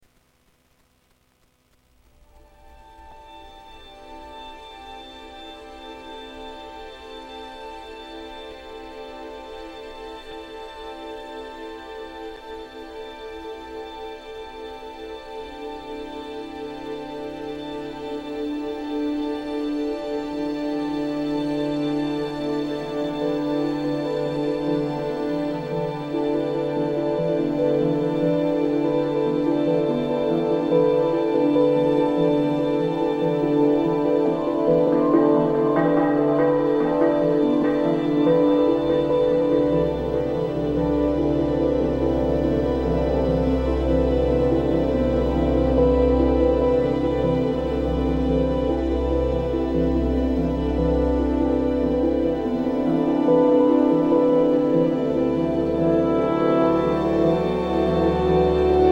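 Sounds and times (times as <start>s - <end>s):
rain ambience on a grey rainy November day: 0.0s - 58.9s.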